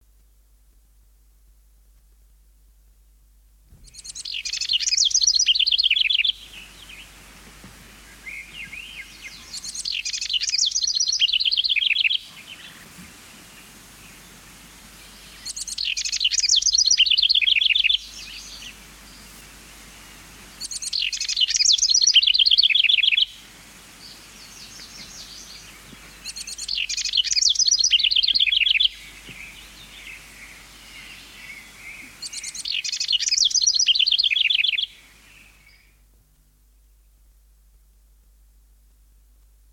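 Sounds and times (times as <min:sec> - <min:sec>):
songbirds singing: 0:03.7 - 0:37.4
house wren singing: 0:03.8 - 0:07.2, 0:08.1 - 0:12.8, 0:15.1 - 0:19.3, 0:20.5 - 0:23.3, 0:24.0 - 0:36.0.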